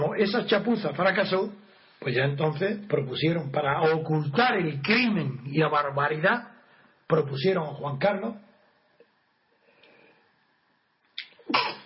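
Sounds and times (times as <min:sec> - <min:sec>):
speech: 0:00.2 - 0:06.5, 0:07.1 - 0:08.4
single forceful sneeze: 0:11.2 - 0:11.8.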